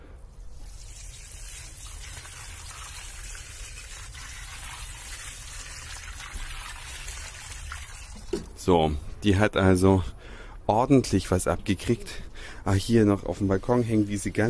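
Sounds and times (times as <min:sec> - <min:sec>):
water poured from a watering can onto a potted gerbera on a balcony: 0:00.5 - 0:08.5
speech: 0:08.6 - 0:14.4.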